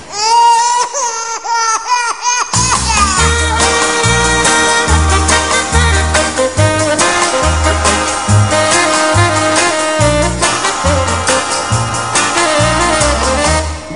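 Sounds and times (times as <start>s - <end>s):
baby crying in a cradle: 0.0s - 3.8s
full band with thumping bass and drums: 2.6s - 13.8s.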